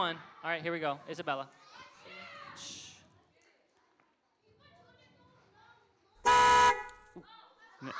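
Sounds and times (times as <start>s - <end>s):
speech: 0.0s - 1.7s, 2.6s - 2.8s, 7.2s - 7.9s
loud car horn honk: 6.2s - 7.1s.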